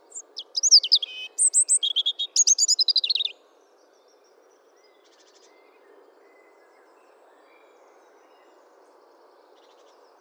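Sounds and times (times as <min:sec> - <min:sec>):
European robin Erithacus rubecula singing: 0:00.1 - 0:03.3.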